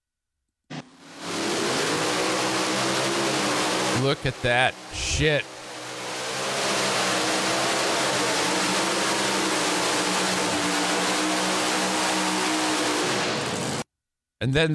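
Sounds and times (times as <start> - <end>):
tractor-pull engine revving loudly: 0.7 - 13.8
speech: 4.0 - 5.6, 14.4 - 14.7.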